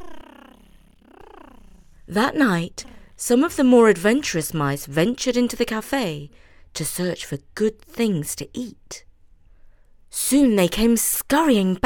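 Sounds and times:
cat purring: 0:00.0 - 0:05.0
speech: 0:02.1 - 0:09.1, 0:10.1 - 0:11.8.

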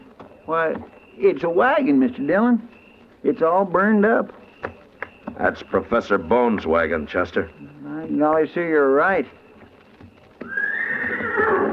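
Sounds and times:
speech: 0:00.5 - 0:04.4, 0:05.4 - 0:09.4
horse whinnying: 0:10.4 - 0:11.7.

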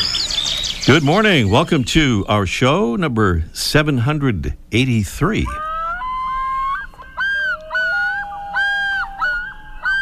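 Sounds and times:
speech: 0:00.9 - 0:05.6
common loon calling: 0:05.5 - 0:09.9.

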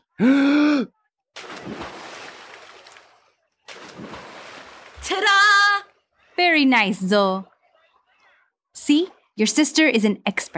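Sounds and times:
swimmer gasping for air coming up from underwater: 0:00.0 - 0:00.9
speech: 0:00.2 - 0:01.0, 0:06.6 - 0:07.5, 0:08.8 - 0:10.5
rushing watery noise: 0:01.4 - 0:05.6.

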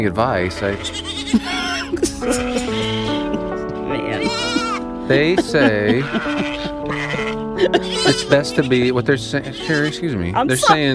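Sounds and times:
speech: 0:00.0 - 0:02.7, 0:05.1 - 0:06.5, 0:07.6 - 0:10.9
goats bleating: 0:00.2 - 0:10.9
laughter: 0:01.3 - 0:10.9.

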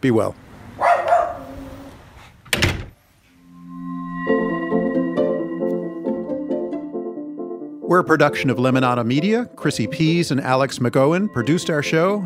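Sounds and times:
speech: 0:00.0 - 0:00.4, 0:07.9 - 0:12.2
dog barking: 0:00.8 - 0:01.8
steady tonal music with rhythmic notes: 0:03.4 - 0:12.2.

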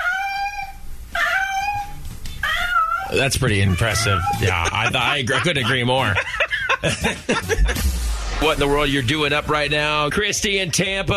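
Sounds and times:
cat meowing loudly: 0:00.0 - 0:04.5
speech: 0:03.1 - 0:11.1
laughter: 0:04.4 - 0:07.8.

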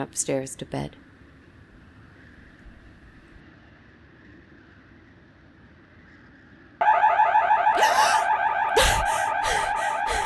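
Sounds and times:
speech: 0:00.0 - 0:01.1
house alarm with loud warbling electronic wail: 0:06.8 - 0:10.2
harsh noise bursts: 0:07.0 - 0:10.2.

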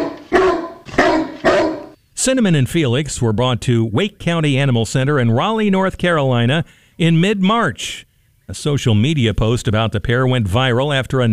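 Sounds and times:
bulldog mix barking in loud deep woofs: 0:00.0 - 0:02.0
speech: 0:02.2 - 0:11.3.

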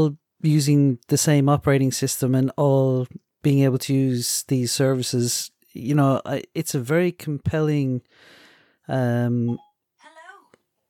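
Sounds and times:
speech: 0:00.0 - 0:09.7
mobile phone electronic tone: 0:09.5 - 0:09.8.

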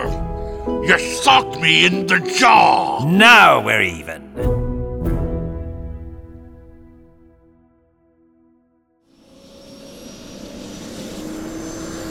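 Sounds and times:
speech: 0:00.8 - 0:04.5
helicopter engine whine: 0:09.2 - 0:12.0
helicopter engine and rotors roaring: 0:09.7 - 0:12.0.

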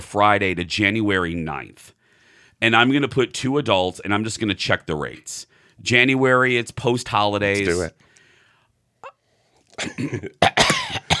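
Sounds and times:
speech: 0:00.0 - 0:02.0, 0:02.6 - 0:08.0, 0:09.8 - 0:11.1
person coughing harsh raspy coughs: 0:09.8 - 0:11.1.

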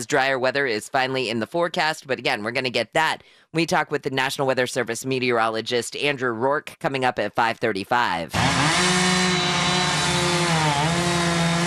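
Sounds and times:
speech: 0:00.0 - 0:08.9
chainsaw cutting up a huge fallen oak tree: 0:08.3 - 0:11.6.

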